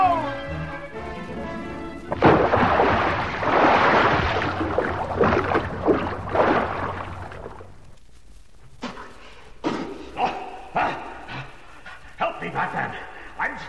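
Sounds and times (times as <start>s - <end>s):
low steady hum: 0.0s - 13.6s
person diving off a pier into water with a splash: 2.1s - 7.7s.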